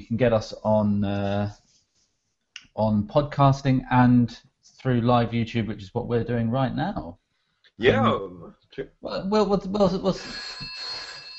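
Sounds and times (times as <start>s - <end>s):
speech: 0.0s - 1.6s, 2.8s - 7.2s, 7.8s - 10.9s
mobile phone ringtone: 10.2s - 11.3s.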